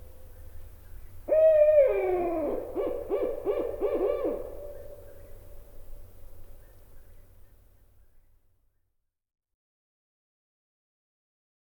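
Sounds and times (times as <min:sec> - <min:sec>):
North American barred owl hooting: 0:01.3 - 0:05.4.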